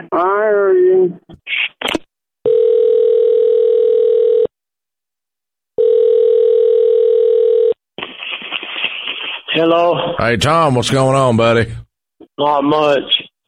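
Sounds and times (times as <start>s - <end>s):
speech: 0.0s - 1.6s, 9.6s - 11.8s, 12.4s - 13.2s
telephone dial tone: 2.5s - 4.5s, 5.8s - 7.8s
clicks and bursts of noise: 8.0s - 9.6s.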